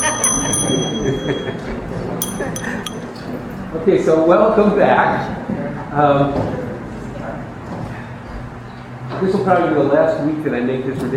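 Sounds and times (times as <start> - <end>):
bell being struck: 0.0 - 3.4
speech: 3.9 - 5.4, 6.0 - 6.6, 9.2 - 11.1.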